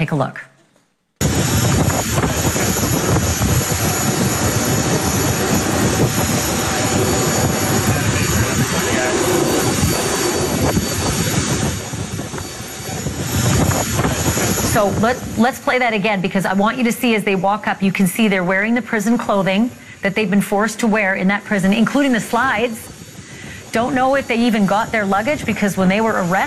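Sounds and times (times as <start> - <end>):
speech: 0.0 - 0.5, 14.8 - 22.9, 23.7 - 26.4
jet aircraft idling on airport tarmac in Cancun: 1.2 - 26.4.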